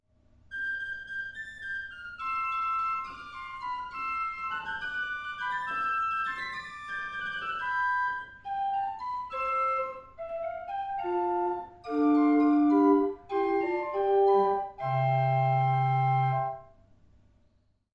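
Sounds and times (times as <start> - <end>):
positive organ music: 0.6 - 16.6.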